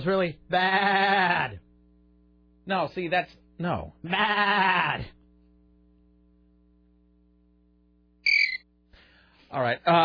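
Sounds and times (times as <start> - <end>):
speech: 0.0 - 1.6, 2.7 - 5.2, 9.5 - 10.0
quiet low hum: 0.0 - 10.0
shrill cricket chirp sound effect: 8.2 - 8.6.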